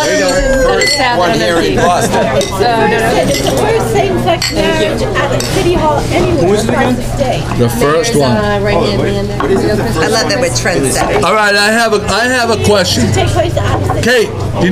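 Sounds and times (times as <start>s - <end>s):
glasses clinking together in a toast: 0.0s - 1.6s, 2.3s - 3.7s, 4.4s - 5.6s
overlapping voices chatting and laughing: 0.0s - 14.7s
speech: 1.0s - 14.7s.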